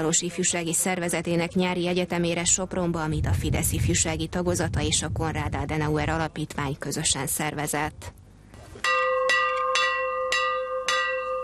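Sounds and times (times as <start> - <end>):
speech: 0.0 - 8.2
bell ringing in Sopron Hungary commemorating the 1989 border opening: 8.9 - 11.4.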